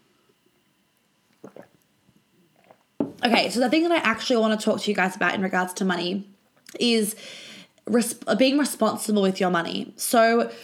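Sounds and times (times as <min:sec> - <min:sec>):
person sipping water: 0:01.2 - 0:03.0
swallowing water: 0:01.3 - 0:03.0
loud gulp of water: 0:01.4 - 0:01.8
speech: 0:03.2 - 0:10.6.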